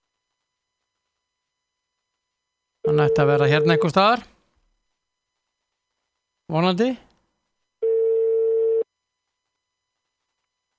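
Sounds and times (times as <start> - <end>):
outgoing telephone call ringing tone beep: 2.9 - 4.0, 7.8 - 8.8
speech: 2.9 - 4.3, 6.5 - 7.1.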